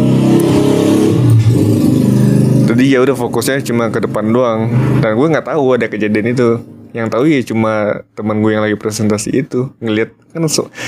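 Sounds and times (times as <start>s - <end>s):
motorcycle engines revving and passing: 0.0s - 7.4s
speech: 2.8s - 10.8s.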